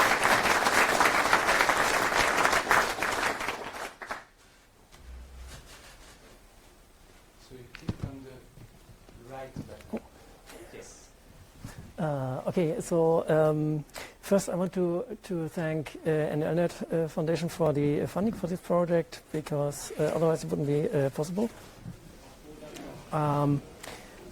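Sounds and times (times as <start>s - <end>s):
audience applause welcoming a speaker to a talk: 0.0s - 4.3s
speech: 12.6s - 21.7s, 23.1s - 23.7s.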